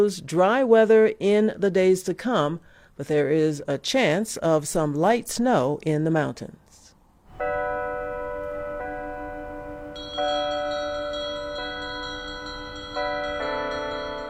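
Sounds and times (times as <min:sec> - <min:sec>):
speech: 0:00.0 - 0:06.7
church bells ringing in overlapping peals: 0:07.3 - 0:14.2.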